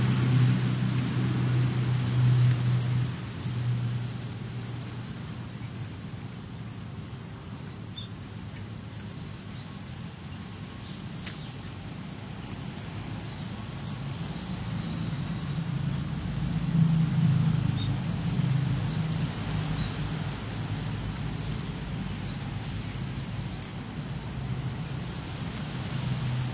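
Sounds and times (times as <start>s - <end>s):
wind blowing among fallen leaves: 0.0s - 26.5s
sharp tick: 11.2s - 11.6s.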